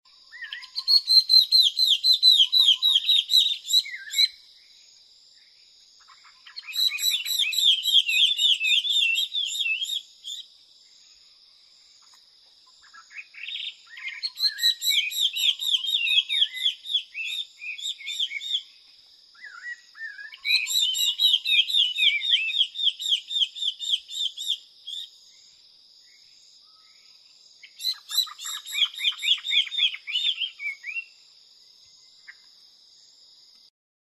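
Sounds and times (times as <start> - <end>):
Taiwan hwamei resident bird: 0.2 - 4.4, 6.0 - 10.5, 12.0 - 25.2, 27.6 - 31.2.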